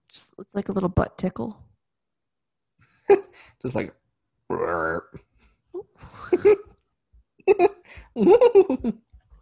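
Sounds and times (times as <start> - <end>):
speech: 0.1 - 1.7, 3.1 - 5.2, 6.0 - 6.7, 7.5 - 9.0
loud throaty burp: 4.5 - 5.2
soft breathy laughter-like sounds: 5.3 - 9.3.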